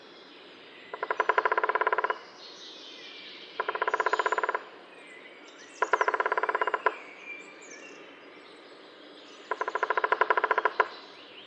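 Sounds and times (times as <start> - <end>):
faint background noise: 0.0 - 11.4
middle spotted woodpecker drumming: 0.9 - 2.2, 3.6 - 4.6, 5.8 - 7.0, 9.5 - 11.1.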